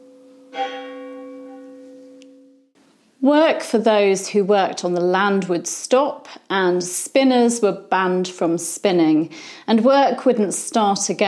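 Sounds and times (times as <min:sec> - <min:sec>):
church bell struck once and ringing: 0:00.0 - 0:02.8
speech: 0:03.2 - 0:11.2.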